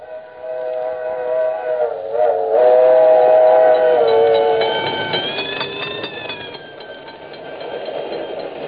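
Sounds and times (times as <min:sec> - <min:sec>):
speeding train rushing past: 0:00.0 - 0:08.6
railway crossing bell ringing: 0:03.3 - 0:08.6.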